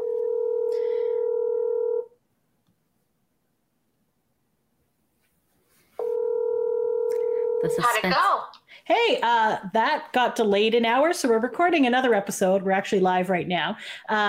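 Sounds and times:
outgoing phone call ringback tone: 0.0s - 2.1s, 6.0s - 8.0s
speech: 7.7s - 14.2s.

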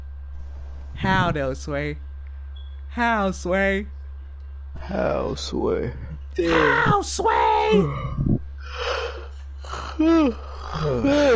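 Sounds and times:
steady low electrical hum: 0.0s - 11.3s
speech: 1.0s - 2.1s, 2.9s - 4.0s, 4.7s - 8.3s, 10.0s - 11.3s
person yawning: 7.7s - 11.3s.

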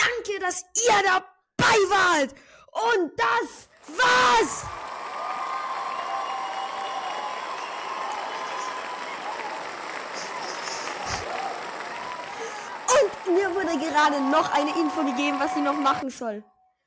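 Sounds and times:
speech: 0.4s - 4.9s, 13.0s - 16.5s
crowd applauding: 3.8s - 16.2s.

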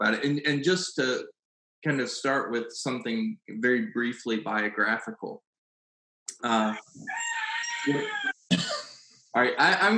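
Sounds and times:
speech: 0.0s - 5.5s, 6.4s - 8.7s, 9.3s - 9.9s
rooster crowing: 7.1s - 8.3s.

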